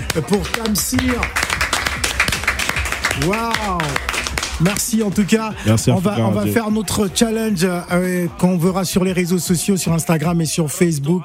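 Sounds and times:
audience applause: 0:00.0 - 0:05.2
speech: 0:00.2 - 0:01.4, 0:03.2 - 0:11.2.

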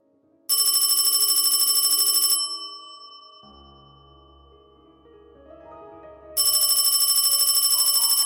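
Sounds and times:
telephone ringing: 0:00.5 - 0:04.4, 0:06.4 - 0:08.2.

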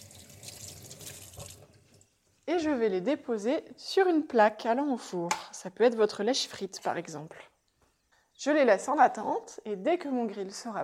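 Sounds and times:
tap water splashing over bell peppers being rinsed: 0:00.0 - 0:01.8
speech: 0:02.5 - 0:07.5, 0:08.4 - 0:10.8.

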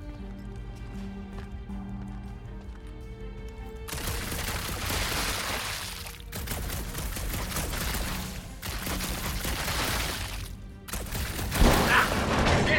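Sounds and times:
rapid weapon gunfire in a video game: 0:03.9 - 0:05.7, 0:06.3 - 0:12.6.

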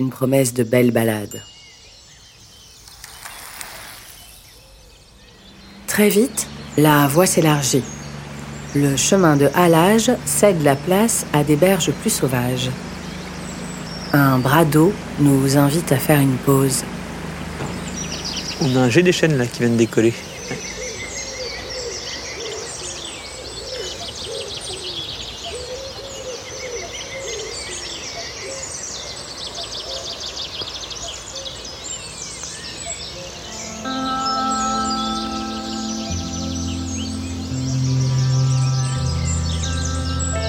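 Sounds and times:
speech: 0:00.0 - 0:01.6, 0:06.0 - 0:08.0, 0:08.7 - 0:12.9, 0:14.1 - 0:17.0, 0:18.6 - 0:20.7
chorus of birds singing in a marsh along the Rance river: 0:00.0 - 0:40.4
low droning tones: 0:05.3 - 0:19.1, 0:33.1 - 0:40.4.

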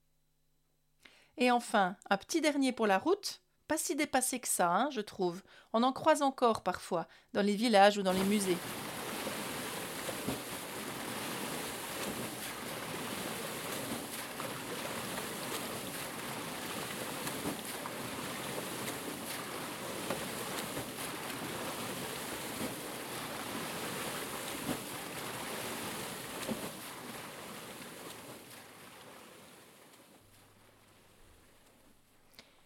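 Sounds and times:
speech: 0:01.4 - 0:08.8
water rushing and splashing in a flowing stream: 0:08.1 - 0:31.7.

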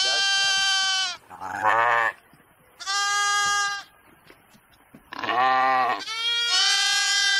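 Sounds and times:
sheep bleating while herded through a gate: 0:00.0 - 0:02.2, 0:02.8 - 0:03.9, 0:05.1 - 0:07.3.

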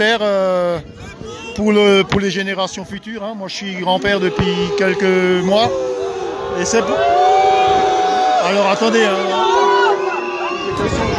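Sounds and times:
speech: 0:00.0 - 0:07.8, 0:08.4 - 0:09.6
steady roar of protesters' voices: 0:03.4 - 0:11.1
protesters' whistles blowing: 0:09.8 - 0:11.1.

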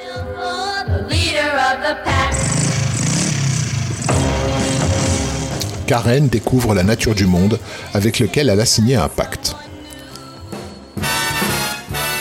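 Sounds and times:
speech: 0:00.2 - 0:02.4, 0:05.9 - 0:09.6
full band song: 0:02.0 - 0:09.7, 0:10.5 - 0:12.1
motorcycle engine revving: 0:02.1 - 0:06.9.

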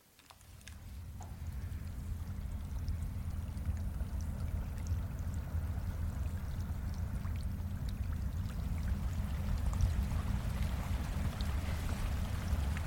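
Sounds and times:
scattered splashes of stream water: 0:00.0 - 0:12.8
swollen stream rushing after rain: 0:09.0 - 0:12.8.

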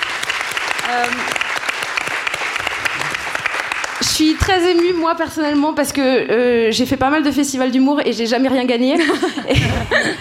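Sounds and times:
audience applause: 0:00.0 - 0:05.0
speech: 0:00.9 - 0:01.5, 0:04.2 - 0:10.1
laughter: 0:08.9 - 0:10.1.

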